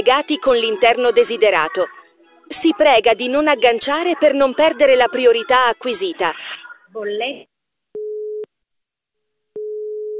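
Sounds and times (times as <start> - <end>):
speech: 0.1 - 7.5
telephone busy tone after call hung up: 9.6 - 10.1.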